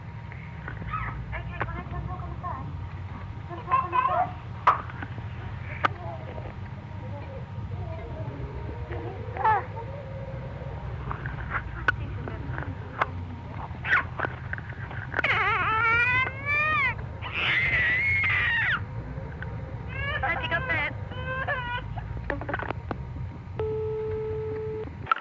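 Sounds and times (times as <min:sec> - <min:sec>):
steady low hum: 0:00.0 - 0:25.1
toddler girl squealing and screaming: 0:15.2 - 0:18.8.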